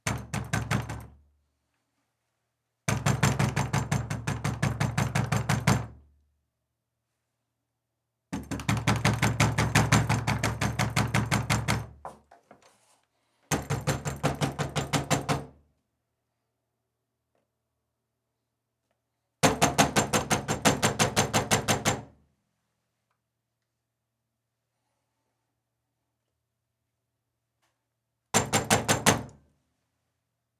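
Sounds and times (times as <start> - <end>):
loud knocking and banging on an interior room door: 0.0 - 1.1, 2.9 - 6.0, 8.4 - 12.1, 13.5 - 15.6, 19.4 - 22.1, 28.3 - 29.3.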